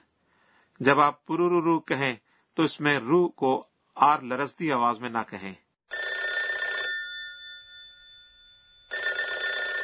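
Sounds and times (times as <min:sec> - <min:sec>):
speech: 0:00.8 - 0:05.6
old dial telephone bell ringing: 0:05.9 - 0:09.8.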